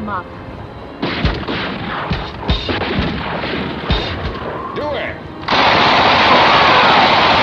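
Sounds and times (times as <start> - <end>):
speech: 0.1 - 0.5
gunshots fired from a moving car: 1.0 - 4.6, 5.4 - 7.4.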